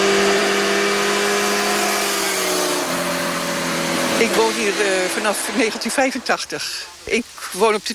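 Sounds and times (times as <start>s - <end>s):
motorcycles accelerating and revving on road: 0.0s - 6.3s
speech: 4.2s - 7.9s.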